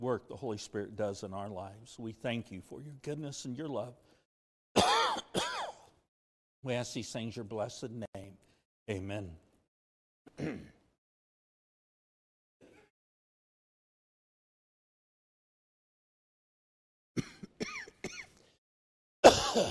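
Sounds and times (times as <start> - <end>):
speech: 0.1 - 4.1, 6.6 - 9.4, 10.3 - 10.8, 19.6 - 19.7
man clearing his throat: 4.8 - 5.9, 10.3 - 10.9, 17.2 - 18.3, 19.2 - 19.7
man coughing: 4.8 - 5.9, 10.3 - 10.9, 17.2 - 18.4, 19.2 - 19.7.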